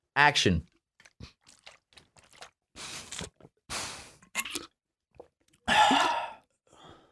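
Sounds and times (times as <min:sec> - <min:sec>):
speech: 0:00.2 - 0:01.3
small wet plop: 0:01.0 - 0:02.6
exaggerated slurping sips of water: 0:01.0 - 0:04.7.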